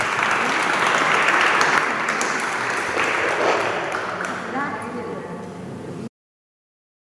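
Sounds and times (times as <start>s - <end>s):
large audience applause at a Benedictine religious gathering: 0.0s - 5.0s.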